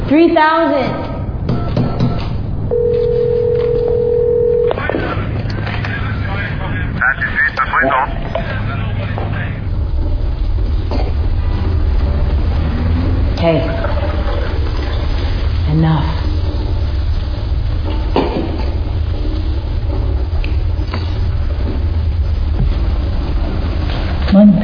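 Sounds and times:
constant low rumble: 0.0s - 24.6s
speech: 0.1s - 1.1s, 7.8s - 8.6s, 13.4s - 14.0s, 15.8s - 16.2s
telephone dial tone: 2.7s - 4.7s.

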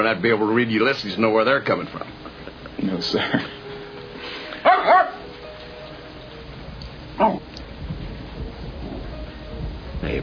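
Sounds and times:
speech: 0.0s - 3.6s
low steady hum: 0.0s - 10.2s
Jack Russell terrier barking: 4.6s - 5.3s, 7.2s - 7.4s.

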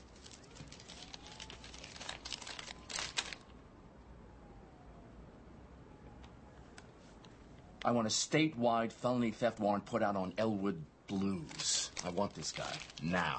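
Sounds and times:
paper bag and note crinkling and rustling: 0.0s - 3.5s, 11.1s - 13.3s
speech: 7.9s - 13.3s.

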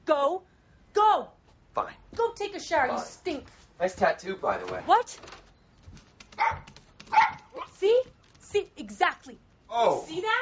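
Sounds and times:
speech: 2.4s - 5.4s, 7.8s - 10.4s
aggressive dog barking: 6.4s - 7.8s.

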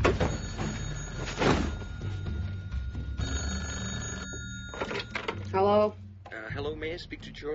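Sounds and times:
telephone ringing with electronic trill: 0.2s - 5.6s
speech: 5.6s - 6.0s, 6.6s - 7.5s.

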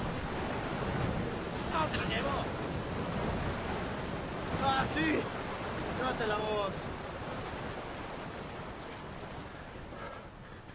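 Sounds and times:
river water rushing: 0.0s - 10.7s
speech: 4.6s - 5.4s, 6.0s - 6.9s.

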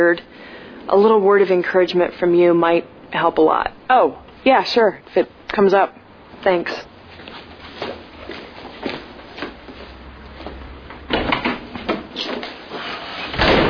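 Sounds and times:
speech: 0.0s - 6.9s
shuffling footsteps: 6.3s - 13.2s
door opening with a rattle and thud: 11.0s - 12.4s, 13.3s - 13.6s.

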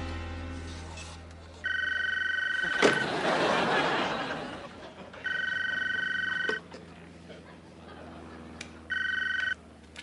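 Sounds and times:
mobile phone ringing in loud electronic bursts: 1.6s - 3.4s, 5.2s - 6.7s, 8.9s - 9.6s
noisy laughter: 2.5s - 8.9s.

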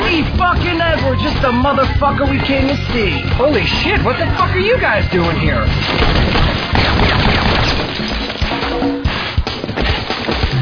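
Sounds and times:
speech: 0.1s - 7.3s
gunshots: 5.8s - 10.6s.

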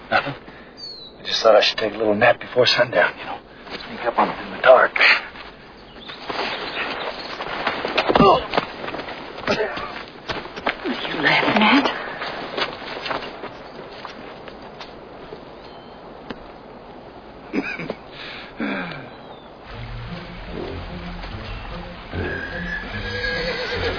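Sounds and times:
speech: 1.4s - 5.3s
hooves clopping and shuffling: 3.6s - 17.2s, 19.6s - 23.9s
low rumbling noise: 19.6s - 23.9s
horses whinnying: 22.0s - 23.9s.

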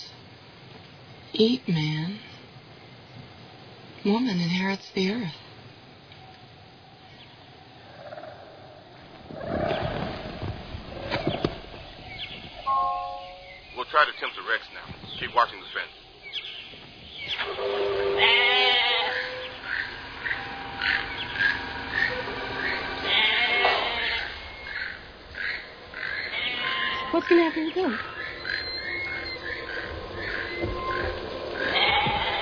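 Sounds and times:
outdoor hiss: 0.0s - 32.3s
speech: 1.4s - 2.3s, 4.0s - 5.4s
goat bleating: 18.2s - 19.6s, 23.0s - 24.5s, 26.2s - 27.2s, 31.6s - 32.3s.

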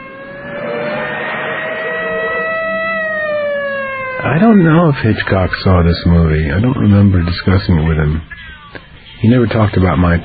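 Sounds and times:
police car siren passing by during a film shoot: 0.0s - 6.6s
speech: 4.2s - 10.2s.

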